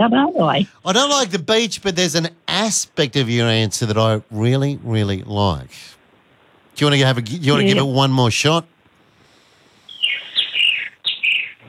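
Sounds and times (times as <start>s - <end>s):
speech: 0.0s - 6.0s, 6.8s - 8.7s
birds chirping: 9.7s - 11.6s.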